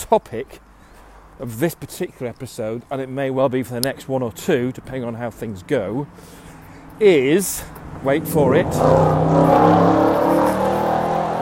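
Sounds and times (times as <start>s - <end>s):
speech: 0.1s - 0.7s, 1.4s - 10.2s
very loud car driving past on a main road: 7.7s - 11.4s.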